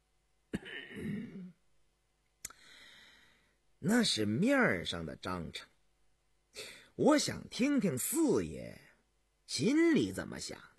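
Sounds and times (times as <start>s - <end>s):
person clearing throat with a light cough: 0.5s - 1.6s
speech: 3.8s - 5.7s, 6.6s - 8.8s, 9.5s - 10.7s.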